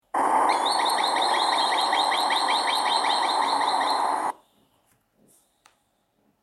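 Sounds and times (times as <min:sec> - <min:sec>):
green sandpiper calling: 0:00.2 - 0:04.3.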